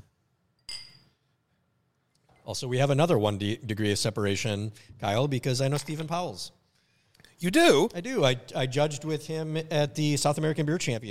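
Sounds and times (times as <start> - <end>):
glasses clinking in a toast: 0.6 - 1.2
speech: 2.5 - 6.6, 7.4 - 11.0.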